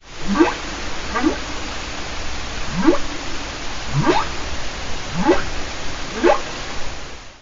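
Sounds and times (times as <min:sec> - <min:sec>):
whale call: 0:00.2 - 0:01.6, 0:02.6 - 0:04.4, 0:05.1 - 0:06.6.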